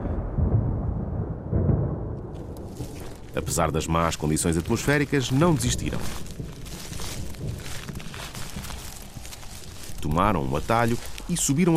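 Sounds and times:
thunder from an approaching storm rumbling: 0.0s - 11.7s
faint crackling hiss: 2.4s - 11.7s
speech: 3.4s - 6.4s, 10.2s - 11.7s.

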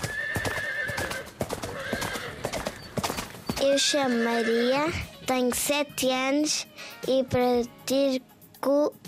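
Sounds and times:
horse whinnying: 0.0s - 3.1s, 3.7s - 4.8s
horse hooves clip-clopping: 0.0s - 5.6s
speech: 3.6s - 9.0s.

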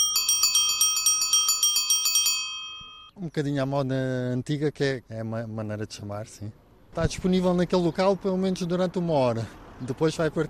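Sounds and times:
bicycle bell ringing for a mobile bicycle library: 0.0s - 3.2s
speech: 3.2s - 10.4s.

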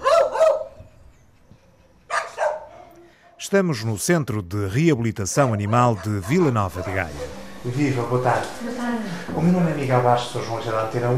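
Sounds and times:
dogs barking at an animal rehabilitation centre: 0.0s - 0.8s, 2.0s - 3.4s, 5.3s - 7.4s
faint kennel noise: 0.0s - 3.6s, 5.2s - 9.3s
speech: 3.4s - 11.1s.

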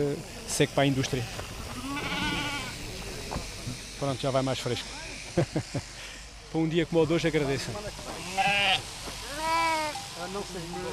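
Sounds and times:
speech: 0.0s - 1.6s, 3.4s - 9.2s, 10.2s - 10.9s
sheep bleating during shearing by the Australian method: 1.8s - 2.8s, 8.2s - 10.0s
laughter: 5.2s - 6.1s.

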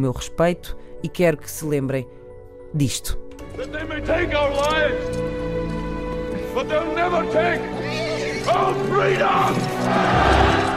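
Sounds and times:
speech: 0.0s - 5.3s, 6.6s - 10.6s
horse neighing: 7.8s - 8.8s.

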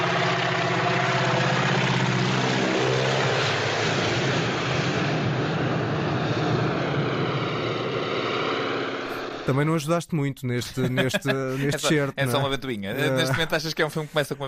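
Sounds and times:
propeller airplane roaring past low overhead: 0.0s - 9.7s
speech: 9.5s - 14.4s
laughter: 10.6s - 14.4s.

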